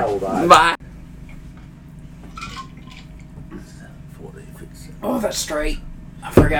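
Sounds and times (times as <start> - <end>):
speech: 0.0 - 0.9, 5.2 - 6.5
steady low hum: 0.0 - 6.5
whisky pouring over ice with water: 2.3 - 3.2.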